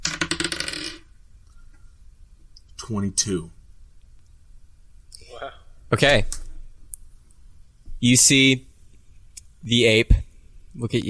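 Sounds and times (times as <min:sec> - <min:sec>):
red dice clattering across a hard tabletop: 0:00.0 - 0:01.1
speech: 0:02.9 - 0:03.6, 0:05.9 - 0:06.4, 0:08.0 - 0:08.7, 0:09.6 - 0:10.2, 0:10.8 - 0:11.0.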